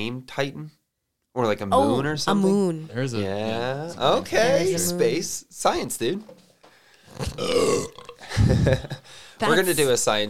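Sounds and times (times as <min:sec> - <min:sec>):
speech: 0:00.0 - 0:00.8, 0:01.4 - 0:06.4, 0:07.2 - 0:10.2
loud drawn-out burp and low gurgling belch: 0:07.1 - 0:08.6.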